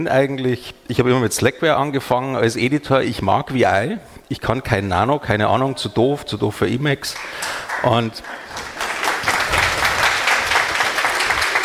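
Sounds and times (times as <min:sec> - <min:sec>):
speech: 0:00.0 - 0:08.4
canned applause: 0:07.1 - 0:11.6.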